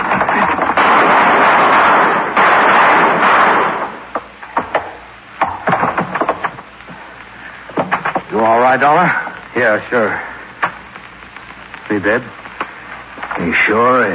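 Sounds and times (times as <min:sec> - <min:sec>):
gunshots blowing out a door lock: 0:00.0 - 0:06.6
sharp irregular cracks and thuds: 0:00.0 - 0:09.6, 0:10.4 - 0:13.8
speech: 0:08.7 - 0:10.3, 0:11.9 - 0:12.3, 0:13.5 - 0:14.1.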